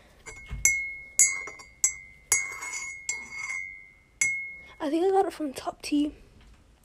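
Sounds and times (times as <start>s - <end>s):
glass of strawberry fruit tea tapped and clinking: 0.2s - 4.8s
speech: 4.8s - 6.2s.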